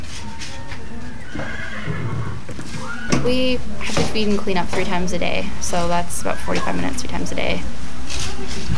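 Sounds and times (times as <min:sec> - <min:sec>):
horse whinnying: 0:01.2 - 0:03.2
speech: 0:03.2 - 0:07.8, 0:08.4 - 0:08.7.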